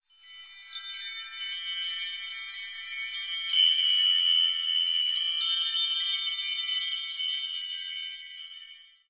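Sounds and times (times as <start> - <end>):
tinkling bells: 0.0 - 9.0.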